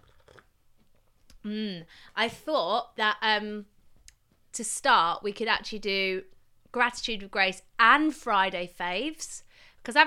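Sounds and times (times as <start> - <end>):
slurping tea from a cup: 0.0 - 0.5
soft mouth and swallowing noises: 0.0 - 1.4
speech: 1.4 - 3.7, 4.5 - 10.0.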